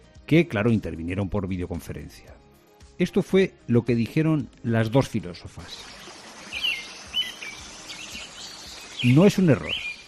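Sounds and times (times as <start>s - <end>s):
speech: 0.3s - 2.4s, 3.0s - 6.0s, 9.0s - 9.9s
birds singing outdoors played over videoconference: 5.6s - 10.0s.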